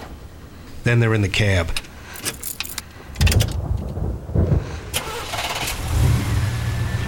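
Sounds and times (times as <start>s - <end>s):
speech: 0.9s - 2.3s
faint jingle of keys: 2.1s - 3.5s
pickup truck engine starting: 4.9s - 7.0s.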